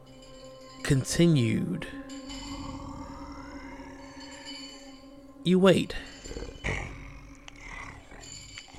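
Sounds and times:
speech: 0.9s - 2.0s, 5.5s - 6.1s, 6.7s - 7.0s
monstrous creature grumbling and growling while eating: 2.3s - 4.9s, 6.2s - 8.7s.

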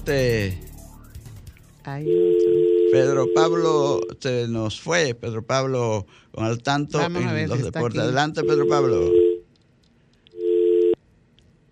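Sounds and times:
speech: 0.0s - 0.6s, 1.8s - 9.2s
telephone busy tone as a phone call drops: 2.0s - 4.1s, 8.4s - 9.4s, 10.4s - 11.0s
faint hiss: 3.0s - 11.6s.

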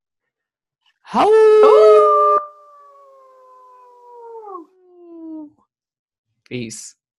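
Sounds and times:
speech: 1.1s - 1.8s, 6.5s - 7.0s
wolf howling: 1.1s - 5.5s.

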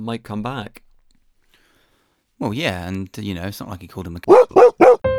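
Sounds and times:
speech: 0.0s - 0.8s, 2.4s - 4.6s
dog bark sound effect: 4.3s - 5.0s.

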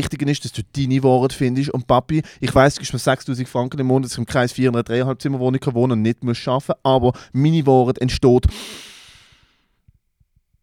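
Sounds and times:
speech: 0.0s - 8.9s
long heavy exhale: 8.5s - 9.8s.

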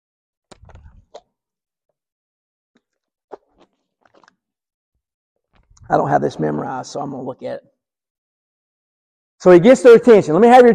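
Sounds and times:
person sipping and gulping water: 0.5s - 1.3s, 2.8s - 4.5s, 5.6s - 5.9s
soft mouth clicks: 0.5s - 1.3s, 2.8s - 4.4s
speech: 5.9s - 7.7s, 9.4s - 10.7s.

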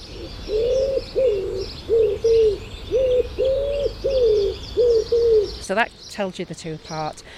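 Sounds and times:
wood pigeon five-note cooing call: 0.0s - 5.6s
faint birdsong chirping: 0.0s - 7.3s
speech: 5.7s - 7.3s.

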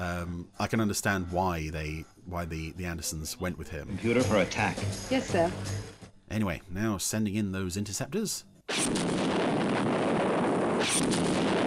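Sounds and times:
speech: 0.0s - 10.2s, 10.8s - 11.6s
explosions: 8.7s - 11.6s
sci-fi UFO weapon fire: 8.7s - 11.6s.

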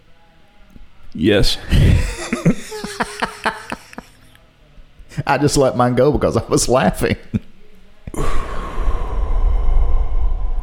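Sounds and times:
speech: 1.2s - 2.1s, 5.3s - 7.4s
laughter: 1.7s - 4.4s
long deep breath drawn in through the nose: 8.1s - 10.6s.

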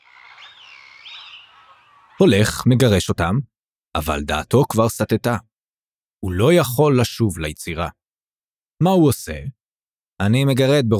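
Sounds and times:
birds chirping in warbling high sweeping calls: 0.0s - 3.0s
speech: 2.2s - 5.5s, 6.2s - 8.0s, 8.8s - 9.6s, 10.2s - 10.9s.

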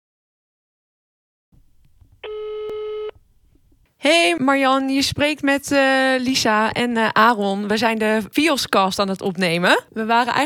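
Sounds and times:
telephone dial tone of a call being dialled: 2.2s - 3.2s
speech: 4.0s - 10.4s.

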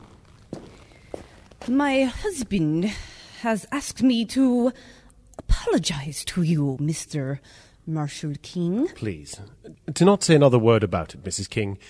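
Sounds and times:
woman's heel footsteps on a hard floor: 0.0s - 1.7s
speech: 1.6s - 5.0s, 5.6s - 11.8s.

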